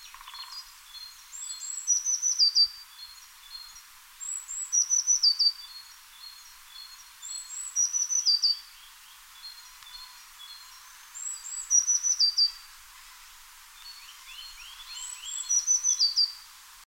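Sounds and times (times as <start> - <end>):
Eurasian blue tit Cyanistes caeruleus song: 0.0 - 12.7, 13.8 - 16.4.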